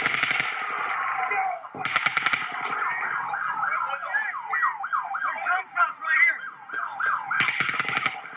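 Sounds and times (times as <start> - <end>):
rapid automatic gunfire: 0.0 - 1.2, 1.8 - 3.0, 7.4 - 8.3
wailing warbling siren: 0.0 - 8.3.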